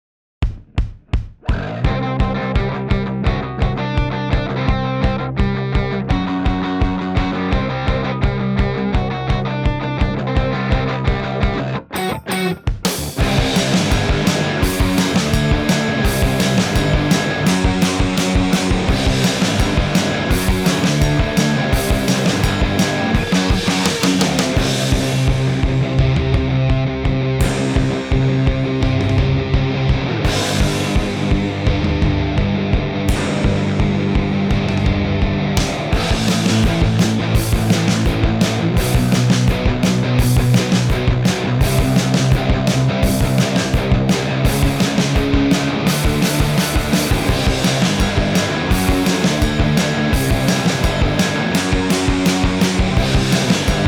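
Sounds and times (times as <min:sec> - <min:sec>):
synthpunk music without synthesizer: 0:00.4 - 0:53.8.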